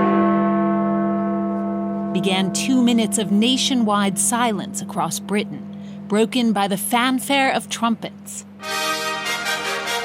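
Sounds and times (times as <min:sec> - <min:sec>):
large clock tower bells tolling at noon in London: 0:00.0 - 0:05.6
speech: 0:02.1 - 0:09.0.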